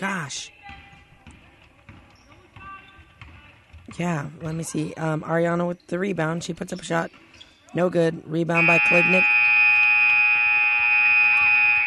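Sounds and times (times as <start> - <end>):
speech: 0.0 - 0.6, 3.9 - 9.4
faint noise: 0.0 - 11.8
electronic buzzer ending the first quarter of a basketball game: 8.6 - 11.8.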